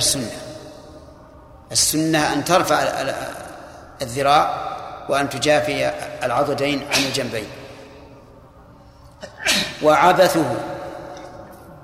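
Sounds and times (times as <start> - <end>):
speech: 0.0 - 0.4, 1.7 - 3.4, 4.0 - 7.6, 9.5 - 10.7
person sneezing: 6.9 - 7.4, 9.2 - 9.8.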